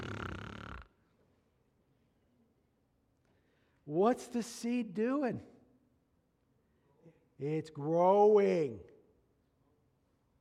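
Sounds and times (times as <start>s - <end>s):
person imitating a loud rasping snore: 0.0s - 0.9s
speech: 3.9s - 5.5s, 7.4s - 8.9s.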